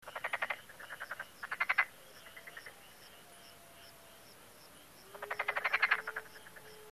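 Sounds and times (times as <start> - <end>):
frog croaking: 0.0 - 6.9.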